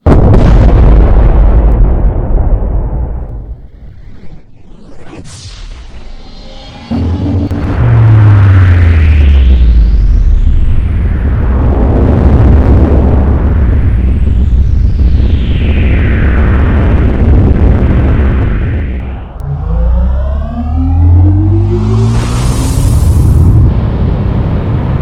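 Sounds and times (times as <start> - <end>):
antimatter nuclear explosions: 0.0 - 25.0.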